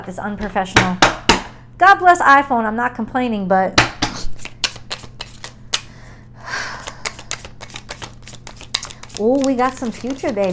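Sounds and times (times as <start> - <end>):
speech: 0.0 - 1.2, 1.8 - 4.0, 9.2 - 10.5
deck of tarot cards being shuffled: 4.1 - 5.9, 6.7 - 10.5.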